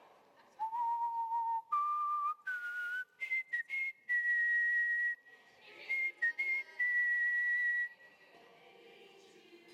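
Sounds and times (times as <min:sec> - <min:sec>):
person whistling a song melody: 0:00.6 - 0:05.3, 0:05.9 - 0:07.9.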